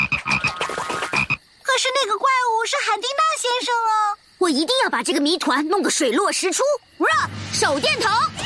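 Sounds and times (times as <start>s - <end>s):
bullfrog croaking: 0.0s - 1.5s
speech: 2.0s - 8.3s.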